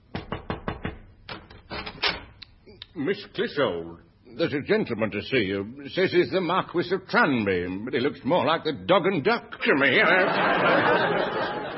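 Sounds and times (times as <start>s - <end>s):
knocking on a dressing room door: 0.0s - 1.1s
speech: 3.0s - 11.6s
laughter: 9.8s - 11.7s.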